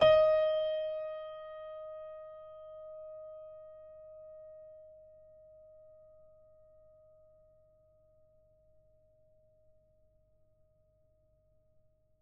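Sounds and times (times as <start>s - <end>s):
piano note D sharp 3: 0.0s - 4.4s.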